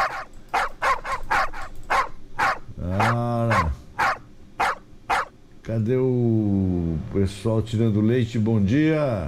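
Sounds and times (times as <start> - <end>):
dogs barking: 0.0 - 5.4
speech: 5.7 - 9.2.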